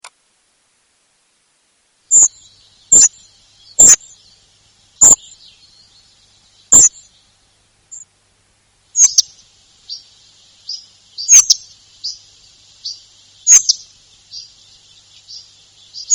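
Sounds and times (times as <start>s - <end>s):
spotted flycatcher singing: 2.1s - 8.1s, 8.9s - 16.1s.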